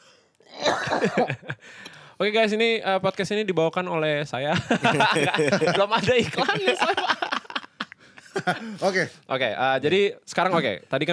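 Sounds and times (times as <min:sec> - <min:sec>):
harsh throaty coughing: 0:00.5 - 0:01.3
laughter: 0:00.6 - 0:01.6, 0:04.5 - 0:09.0
speech: 0:00.9 - 0:07.2, 0:08.4 - 0:11.1.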